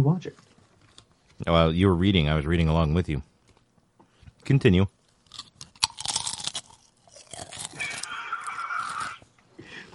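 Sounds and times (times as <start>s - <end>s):
speech: 0.0s - 0.5s, 1.4s - 3.3s, 4.4s - 5.0s
crunching and chewing of food: 0.4s - 1.5s, 5.0s - 9.9s.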